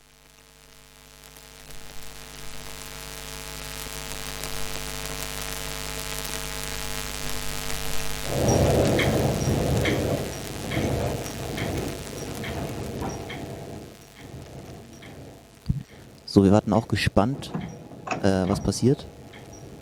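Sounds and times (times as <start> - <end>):
steady rainfall: 0.0 - 19.7
loud low rumbling thunder: 6.1 - 19.7
speech: 16.4 - 19.2.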